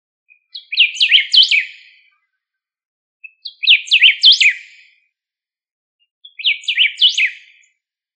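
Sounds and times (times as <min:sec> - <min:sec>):
bird chirping: 0:00.3 - 0:02.4, 0:03.2 - 0:05.0, 0:06.0 - 0:07.9.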